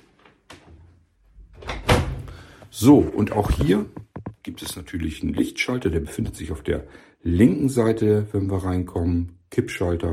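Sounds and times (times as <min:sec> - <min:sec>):
door opened by its handle on entering a room: 0:01.5 - 0:04.8
speech: 0:02.8 - 0:10.1.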